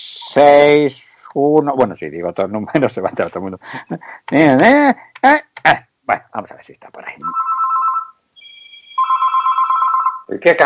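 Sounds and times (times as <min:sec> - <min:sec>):
speech: 0:00.0 - 0:07.4, 0:10.3 - 0:10.6
thin high electronic beep: 0:07.2 - 0:10.2
telephone ringback tone on an outgoing call: 0:07.2 - 0:10.3.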